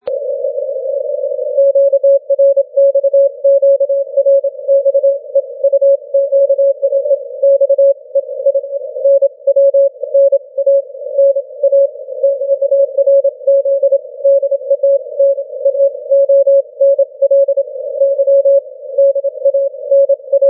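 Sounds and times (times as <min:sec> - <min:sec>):
17m continuous wave radio signal: 0:00.0 - 0:20.4.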